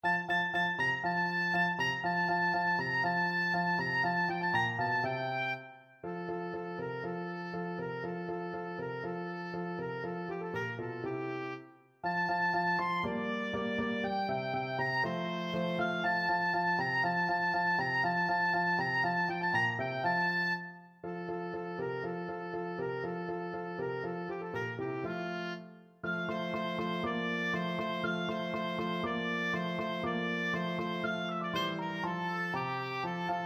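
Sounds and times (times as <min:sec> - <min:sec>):
oboe playing a classical first movement: 0:00.1 - 0:33.4.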